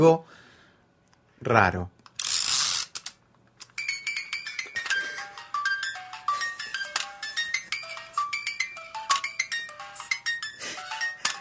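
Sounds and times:
speech: 0.0s - 0.4s, 1.4s - 2.0s
broken wind-up crib toy mechanism whirring, clicking and ratcheting: 2.0s - 5.0s, 6.8s - 10.2s, 11.0s - 11.3s
tinkly slightly off-key crib toy melody: 3.7s - 11.3s.

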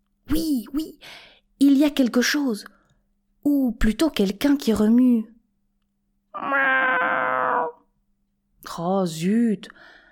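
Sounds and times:
speech: 0.4s - 2.8s, 3.4s - 5.4s, 6.4s - 7.0s, 8.6s - 10.0s
cat meowing: 6.4s - 7.8s.

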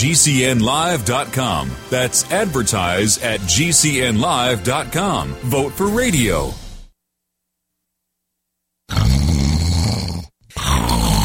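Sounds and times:
speech: 0.0s - 6.6s
loud harsh rasping snoring: 8.9s - 11.2s.

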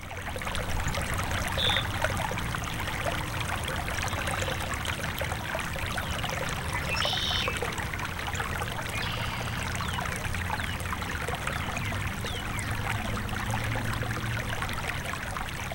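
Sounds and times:
creek water trickling and burbling: 0.0s - 15.7s
faint bird chirps: 6.9s - 7.6s.

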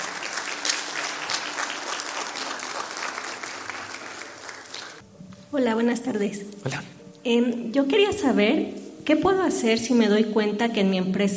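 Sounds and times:
audience applause: 0.0s - 5.0s
speech: 5.5s - 11.3s.

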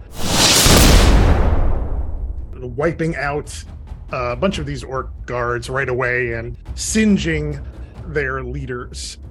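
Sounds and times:
fireball explosion sound effect: 0.0s - 2.6s
speech: 2.6s - 9.2s.

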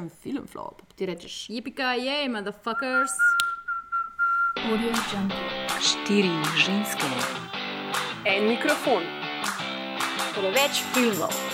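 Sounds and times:
speech: 0.0s - 3.5s, 4.6s - 7.6s, 8.2s - 9.7s, 10.4s - 11.5s
person whistling a phrase: 2.7s - 4.7s.

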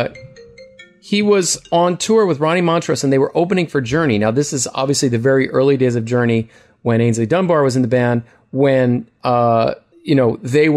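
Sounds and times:
speech: 0.0s - 0.3s, 1.0s - 10.7s
mobile phone ringtone: 0.0s - 2.9s.

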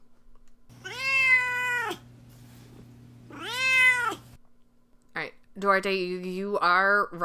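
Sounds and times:
low steady hum: 0.0s - 6.3s
cat meowing: 0.7s - 2.1s, 3.3s - 4.4s
speech: 5.6s - 7.2s.

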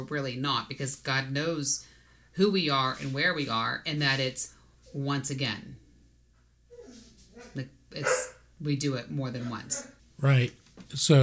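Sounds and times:
speech: 0.0s - 5.8s, 7.4s - 11.2s
dog barking: 6.7s - 8.5s, 9.2s - 10.0s.

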